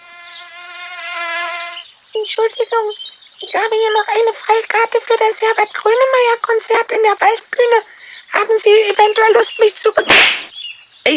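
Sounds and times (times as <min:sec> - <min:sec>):
mosquito whining in Berlin: 0:00.0 - 0:01.8
speech: 0:02.1 - 0:11.1.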